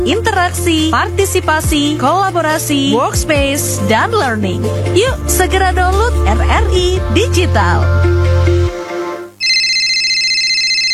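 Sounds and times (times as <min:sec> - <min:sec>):
speech: 0:00.1 - 0:08.4
electronic phone ringtone of an incoming call: 0:09.4 - 0:10.9.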